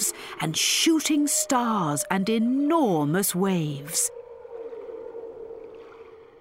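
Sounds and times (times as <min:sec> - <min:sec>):
humpback whale song: 0:00.0 - 0:06.3
speech: 0:00.4 - 0:04.2.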